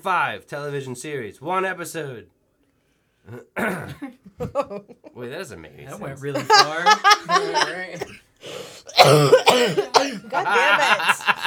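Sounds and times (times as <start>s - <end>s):
speech: 0.0s - 2.4s, 3.2s - 11.4s
laughter: 4.4s - 5.1s, 6.3s - 8.1s, 9.4s - 11.4s
person coughing: 6.7s - 8.2s, 8.9s - 10.9s.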